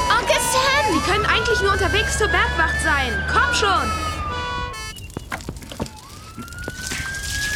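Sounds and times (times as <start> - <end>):
fire engine horn blast: 0.0 - 5.1
fire engine siren wailing: 0.0 - 7.5
rumbling clattering fire engine noise: 0.0 - 7.5
speech: 1.7 - 4.1.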